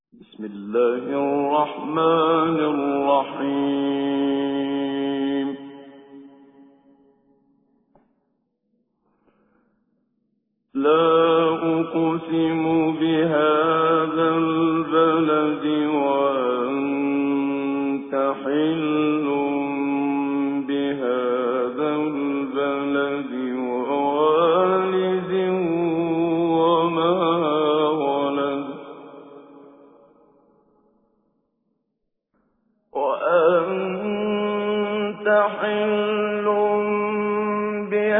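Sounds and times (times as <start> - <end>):
person reciting Quran with tajweed: 0.2 - 6.2, 10.8 - 29.1, 33.0 - 38.1.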